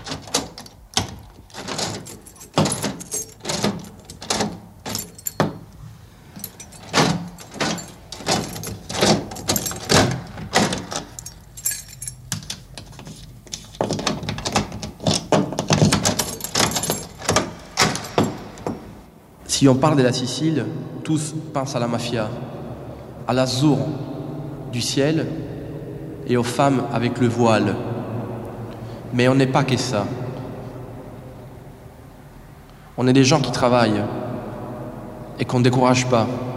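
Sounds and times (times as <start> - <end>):
door lock clicking through turns: 0.0 - 5.8, 6.4 - 19.0
keys jangling: 0.0 - 19.0
speech: 19.6 - 22.6, 23.3 - 24.1, 24.7 - 25.4, 26.3 - 27.9, 29.1 - 30.2, 33.0 - 34.2, 35.4 - 36.5.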